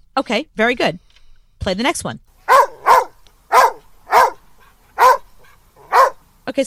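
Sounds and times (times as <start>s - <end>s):
speech: 0.2s - 1.0s, 1.6s - 2.2s, 6.5s - 6.6s
scared dog barking nervously: 2.4s - 6.2s.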